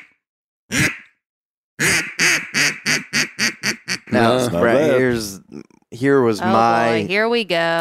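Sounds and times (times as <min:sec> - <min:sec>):
imitated gadwall duck quacking: 0:00.7 - 0:01.1, 0:01.8 - 0:05.8
speech: 0:04.2 - 0:07.7.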